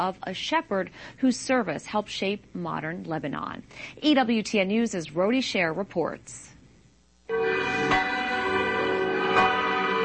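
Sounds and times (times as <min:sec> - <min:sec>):
speech: 0:00.0 - 0:06.5
church bells ringing: 0:07.3 - 0:10.0.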